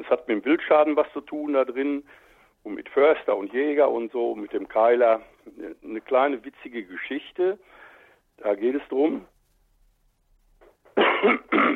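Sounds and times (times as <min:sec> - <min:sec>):
speech: 0:00.1 - 0:07.8, 0:08.4 - 0:09.3, 0:11.2 - 0:11.7
person clearing throat: 0:10.9 - 0:11.7.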